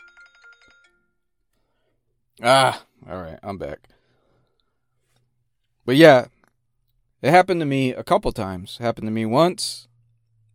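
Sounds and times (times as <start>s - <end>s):
phone ringtone with bright electronic notes: 0.0s - 1.4s
speech: 2.4s - 3.9s, 5.9s - 6.4s, 7.2s - 9.9s.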